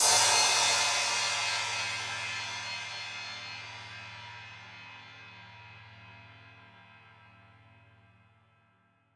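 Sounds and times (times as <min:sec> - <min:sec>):
high crash cymbal hits on a drum kit: 0:00.0 - 0:04.7.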